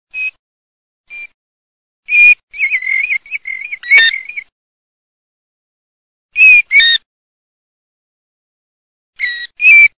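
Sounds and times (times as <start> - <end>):
plover whistling calls: 2.1 - 4.5, 6.4 - 7.0, 9.2 - 9.9.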